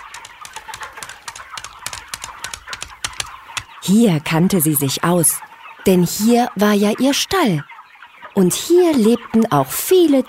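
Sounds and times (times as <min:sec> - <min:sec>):
cow hooves clip-clopping along a path toward a farm: 0:00.0 - 0:03.7
birds chirping: 0:00.0 - 0:10.2
speech: 0:03.9 - 0:07.7, 0:08.4 - 0:10.2.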